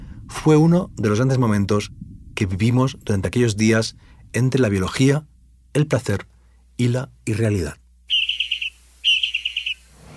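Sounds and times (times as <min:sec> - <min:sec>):
speech: 0:00.4 - 0:07.8
small tree finch song: 0:08.0 - 0:10.1.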